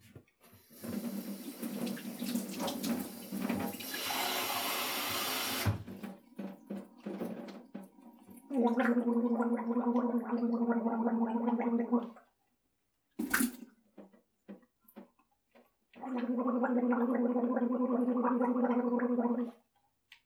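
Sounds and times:
tap water running in a hand-washing routine: 0.4 - 10.3
voiced gargling of water in a sink: 8.0 - 12.2, 16.0 - 19.6.

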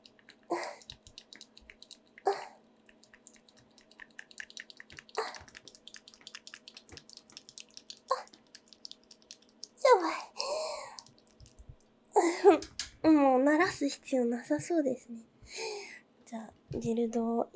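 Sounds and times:
wet genital squelching sounds from an aroused woman: 0.0 - 13.2
faint low hum: 0.0 - 17.5
speech: 13.8 - 15.3, 16.8 - 17.5.

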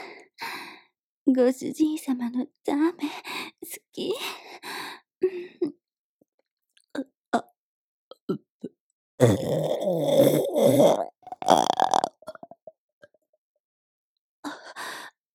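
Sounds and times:
speech: 1.3 - 4.7, 9.2 - 10.0
long loud throaty burp: 9.2 - 12.6
small breaths and mouth sounds: 9.2 - 12.7.

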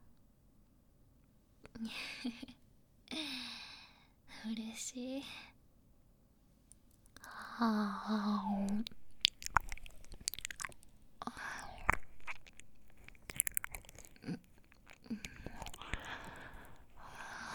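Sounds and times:
speech: 1.8 - 2.5, 4.4 - 5.5, 7.6 - 9.0
wet mouth sounds of someone miming eating an ear: 7.0 - 7.6, 8.6 - 17.5
breathy whispering: 7.2 - 17.5.

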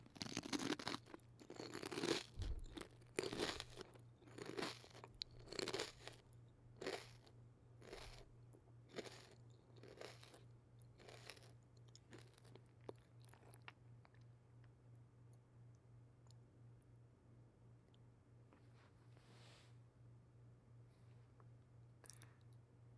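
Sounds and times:
crunchy food eaten very close to the microphone: 0.0 - 8.3, 8.9 - 14.3
faint steady low hum: 0.0 - 22.9.

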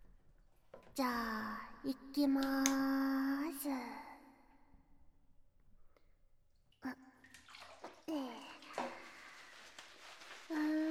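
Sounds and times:
speech: 0.8 - 4.1
wet hands rubbing shampoo into a lather: 7.3 - 10.8.

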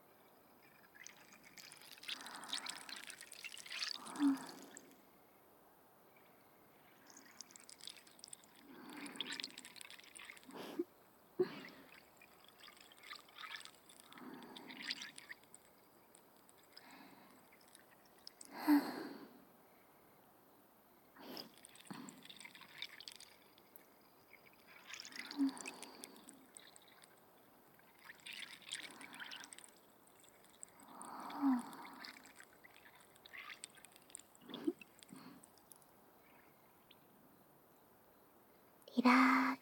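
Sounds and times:
carbonated liquid fizzing: 0.6 - 4.9, 7.0 - 10.8, 11.4 - 18.6, 21.2 - 35.8
speech: 39.0 - 39.4.

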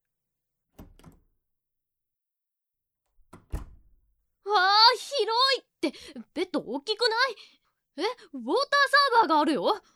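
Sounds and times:
room door opening with thunks and rattles: 0.8 - 1.3, 3.1 - 4.0
room door pushed shut with a heavy thud: 3.3 - 4.0
speech: 5.2 - 9.9.

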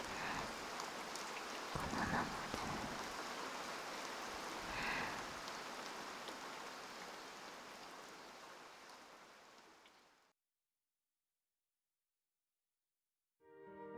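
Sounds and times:
steady rain: 0.0 - 10.3
soft voice murmuring: 1.8 - 3.2.

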